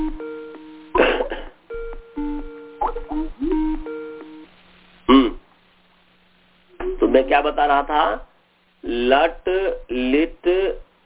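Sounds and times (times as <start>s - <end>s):
phone ringing with an incoming call, short electronic melody: 0.0s - 0.9s, 1.7s - 4.5s
speech: 7.2s - 10.8s.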